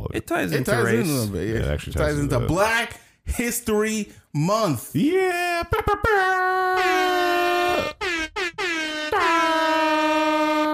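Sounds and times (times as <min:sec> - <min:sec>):
speech: 0:00.2 - 0:08.0
air horn sound effect blasts: 0:06.8 - 0:10.7.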